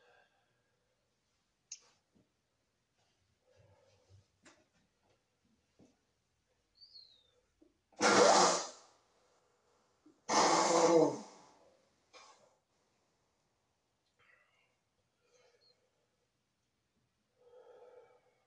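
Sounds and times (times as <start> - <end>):
person blowing their nose: 8.0 - 8.8, 10.3 - 11.4.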